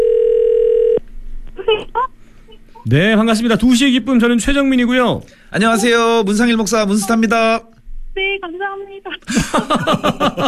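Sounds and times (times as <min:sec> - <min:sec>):
ringing tone of an outgoing telephone call: 0:00.0 - 0:01.0
speech: 0:02.8 - 0:07.7, 0:08.4 - 0:10.4
laughter: 0:09.3 - 0:10.4.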